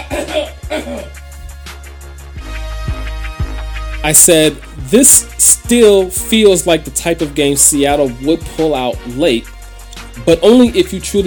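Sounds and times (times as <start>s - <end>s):
throat clearing: 0.0s - 1.2s
speech: 4.0s - 9.6s, 10.2s - 11.2s.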